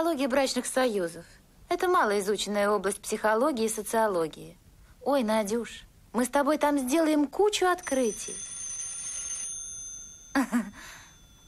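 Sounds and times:
speech: 0.0s - 8.5s, 10.4s - 11.0s
landline telephone ringing: 7.7s - 11.4s.

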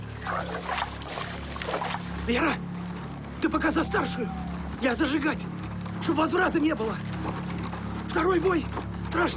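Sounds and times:
kerosene splashed onto straw: 0.2s - 2.0s
speech: 0.4s - 0.9s, 1.7s - 2.7s, 3.4s - 7.4s, 8.1s - 9.3s.

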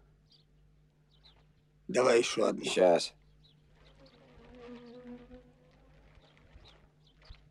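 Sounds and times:
speech: 1.9s - 3.2s
bees buzzing while pressed onto a man's skin to sting: 3.9s - 6.2s.

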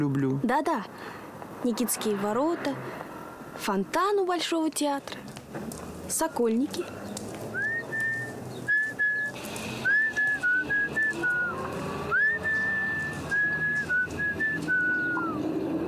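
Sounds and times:
speech: 0.0s - 7.0s
person whistling a lilting tune alone: 7.6s - 15.4s.

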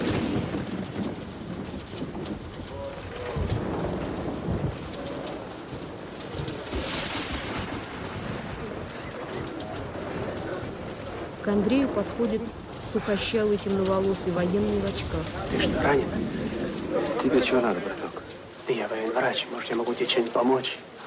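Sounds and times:
rain pouring: 0.0s - 21.0s
thunder rumbling: 0.0s - 21.0s
faint bird calls: 8.8s - 9.6s
speech: 11.5s - 18.0s, 19.2s - 21.0s.

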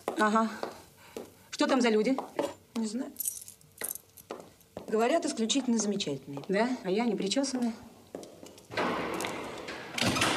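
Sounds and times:
speech: 0.2s - 0.6s, 1.6s - 3.3s, 4.9s - 7.9s
door shutting with a dull thud: 8.7s - 10.3s.

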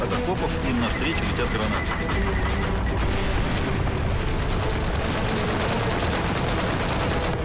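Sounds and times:
speech: 0.0s - 3.2s
continuous machine gun fire during a WWII battle: 1.6s - 7.4s.

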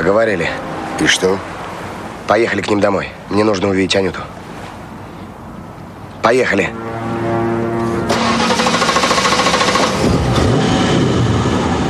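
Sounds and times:
speech: 0.0s - 1.6s, 2.3s - 4.4s, 6.2s - 6.8s
taxi engine revving while pulling away sharply up a hill road: 7.4s - 11.8s.

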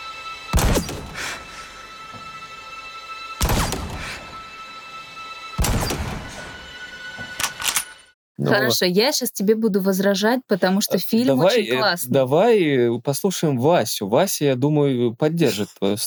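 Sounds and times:
loud gunshots from a film excerpt with short tail: 0.5s - 1.4s, 3.4s - 4.4s, 5.6s - 6.6s
speech: 8.5s - 16.0s.

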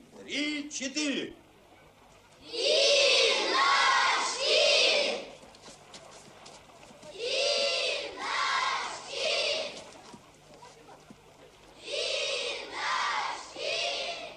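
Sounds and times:
speech: 0.3s - 1.4s, 2.4s - 3.0s
crowd of children shouting in unison: 2.4s - 5.4s, 7.1s - 9.9s, 11.8s - 14.3s.

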